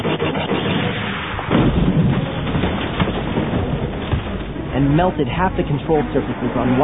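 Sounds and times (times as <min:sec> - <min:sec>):
blaster-style laser cannon shot from a speeder bike: 0:00.0 - 0:04.6
rough crackling wash of noise: 0:00.0 - 0:06.8
speeder bike engine roaring: 0:00.0 - 0:06.8
speech: 0:04.9 - 0:06.8.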